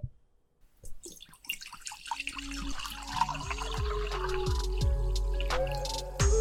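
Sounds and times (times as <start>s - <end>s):
prosecco bottle cork popping: 0.9s - 6.1s
prosecco dripping: 0.9s - 6.3s
prosecco pouring and gurgling into a glass: 1.0s - 5.8s.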